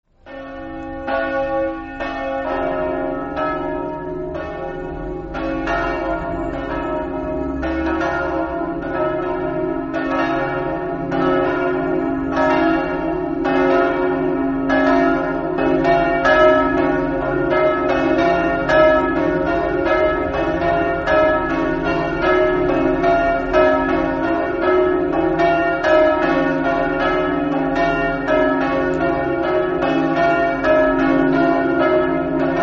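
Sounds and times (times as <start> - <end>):
bells: 0.1 - 32.6.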